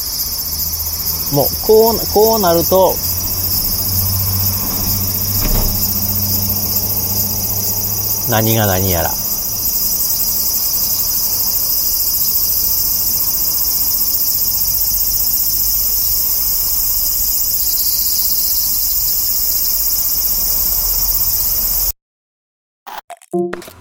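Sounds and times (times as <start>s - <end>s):
cicadas shrilling: 0.0s - 22.0s
speech: 1.3s - 3.0s, 8.3s - 9.2s
faint bumps: 3.4s - 6.2s.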